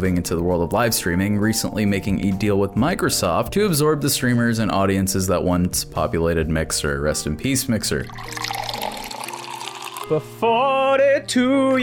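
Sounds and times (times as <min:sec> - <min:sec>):
speech: 0:00.0 - 0:08.7, 0:10.1 - 0:11.8
liquid pouring and splashing: 0:07.9 - 0:10.2.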